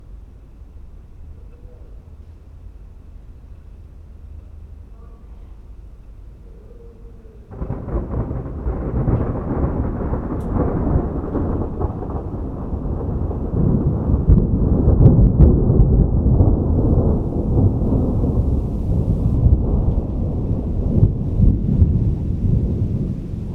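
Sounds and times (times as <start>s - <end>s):
thunderstorm: 4.1s - 23.5s
rain: 7.4s - 23.5s.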